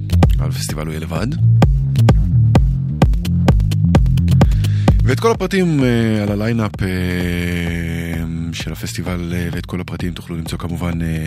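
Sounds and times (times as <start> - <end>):
deep throbbing bassline with shifting low tones: 0.0 - 11.2
steady pounding electronic dance music beat of sharp hits: 0.0 - 11.2
speech: 0.4 - 2.2, 5.1 - 11.2.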